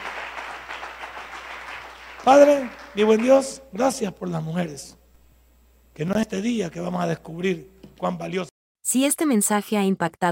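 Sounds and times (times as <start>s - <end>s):
crowd applauding during a sermon: 0.0s - 3.6s
speech: 2.2s - 5.0s, 6.0s - 10.3s.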